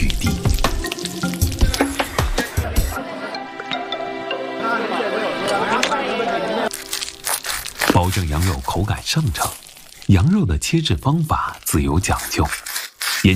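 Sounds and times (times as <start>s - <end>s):
meat skewers sizzling and crackling over a fire: 0.0s - 3.0s, 6.7s - 13.3s
laughter: 2.4s - 6.7s
speech: 8.4s - 13.3s.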